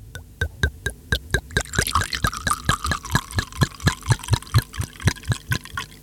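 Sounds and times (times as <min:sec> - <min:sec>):
drink glugging from a bottle into a glass: 0:01.4 - 0:06.0.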